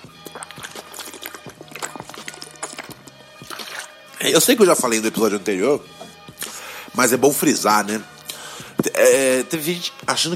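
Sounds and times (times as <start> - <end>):
water gurgling in a bottle while drinking: 0.0 - 5.3
speech: 4.2 - 6.0, 7.0 - 8.1, 9.0 - 10.3.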